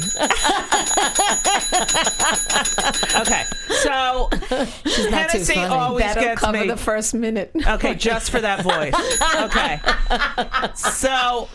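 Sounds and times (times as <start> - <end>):
hand bell ringing rapidly and loudly: 0.0 - 4.0, 9.1 - 10.6
laughter: 0.0 - 6.8, 7.6 - 11.5
speech: 0.2 - 11.5.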